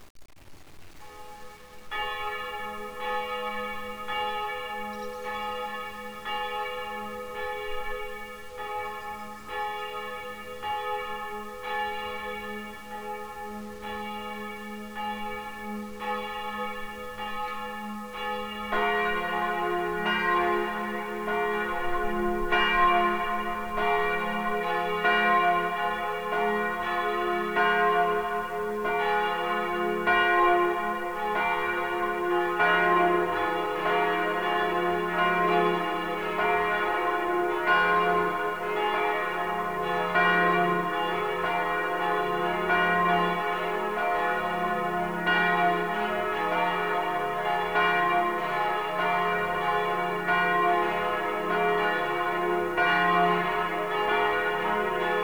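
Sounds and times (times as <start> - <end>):
full peal of church bells at Easter: 1.0 - 55.2.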